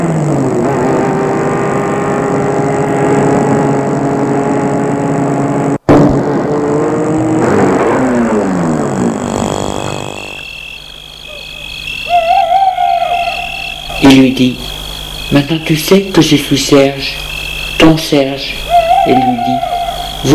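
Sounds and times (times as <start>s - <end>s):
car engine humming as the car drives along a deserted street at night and stops: 0.0s - 5.9s, 6.5s - 20.3s
speech: 14.4s - 14.6s, 15.3s - 20.3s.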